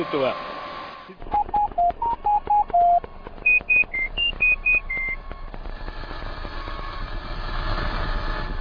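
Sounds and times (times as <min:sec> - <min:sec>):
speech: 0:00.0 - 0:00.5, 0:01.1 - 0:01.4
steady low rumbling hum on a phone line: 0:01.2 - 0:08.6
phone line connection tones: 0:01.3 - 0:05.2.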